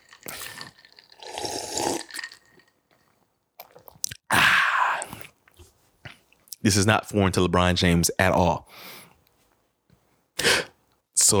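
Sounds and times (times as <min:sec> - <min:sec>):
wet slurping as someone sips a drink: 0:00.0 - 0:06.4
speech: 0:06.6 - 0:09.0.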